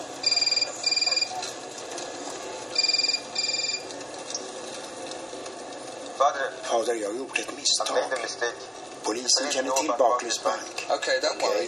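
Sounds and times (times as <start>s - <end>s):
telephone double ring as a call is placed: 0.2s - 1.5s, 2.7s - 4.0s
speech: 6.2s - 11.6s.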